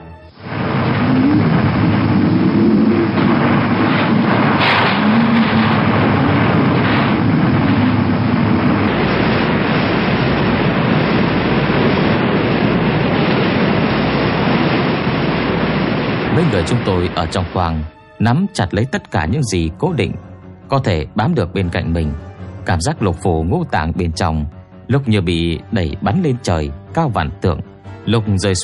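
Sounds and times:
roaring wind in a storm at sea: 0.0 - 17.8
crashing waves in a storm at sea around a tossing ship: 0.3 - 17.9
thunder in a storm at sea: 0.4 - 17.4
speech: 16.6 - 28.6.

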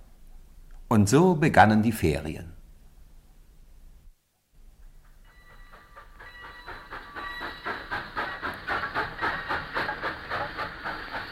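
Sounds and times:
speech: 0.9 - 2.6
faint clickety-clack of steam train on rails: 4.8 - 11.3
steam train puffing along the rails: 5.1 - 11.3.

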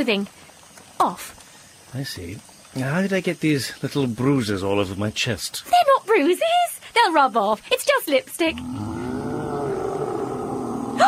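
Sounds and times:
speech: 0.0 - 0.4, 1.0 - 8.9
deep sustained unearthly roar with rumbling growl: 8.5 - 11.0.

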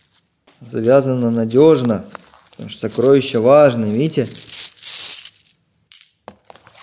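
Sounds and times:
speech: 0.6 - 4.5
bag of coloured glass pieces shaken and opened: 3.9 - 6.2.

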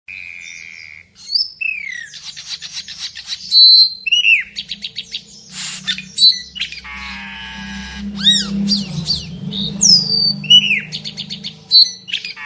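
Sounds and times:
Asian glossy starling singing: 0.1 - 12.4
low hum: 4.4 - 12.1.

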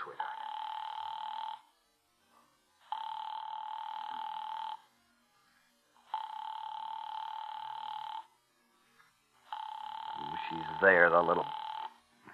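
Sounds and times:
telephone ringing unanswered with long electronic ring bursts: 0.0 - 1.7, 2.9 - 4.9, 6.0 - 8.3, 9.4 - 12.0
speech: 10.8 - 11.6.

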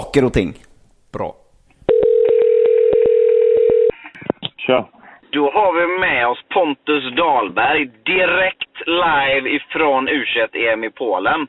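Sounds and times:
speech: 0.1 - 1.4, 4.7 - 11.4
steady telephone dial tone: 1.9 - 4.0.

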